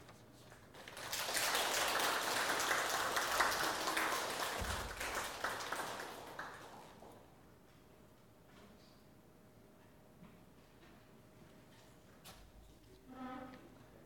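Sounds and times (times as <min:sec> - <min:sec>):
crowd applauding: 0:00.7 - 0:07.3.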